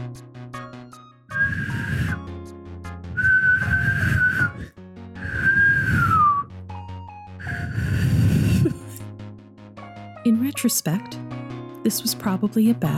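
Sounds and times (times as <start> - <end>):
person whistling to imitate a frog's call: 1.3 - 2.3, 3.2 - 6.5, 7.4 - 8.6
speech: 10.6 - 11.2, 11.8 - 12.9.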